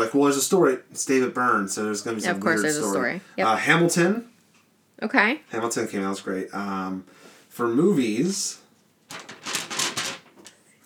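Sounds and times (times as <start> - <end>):
speech: 0.0 - 4.3, 5.0 - 9.3
sheet of paper holding a list rustling: 9.1 - 10.6.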